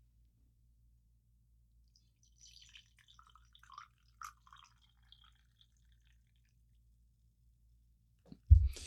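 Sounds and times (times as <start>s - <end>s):
tea being poured: 2.0s - 6.7s
sudden bump: 8.4s - 8.8s.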